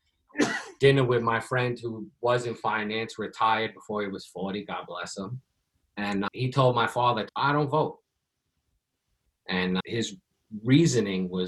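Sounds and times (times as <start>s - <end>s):
person sneezing: 0.4s - 0.8s
speech: 0.8s - 8.0s, 9.5s - 11.4s.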